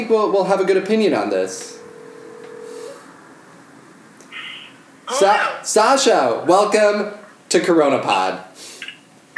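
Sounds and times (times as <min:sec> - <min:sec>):
speech: 0:00.0 - 0:01.8, 0:05.1 - 0:08.7
steady low electronic telephone dialing tone: 0:00.0 - 0:04.1.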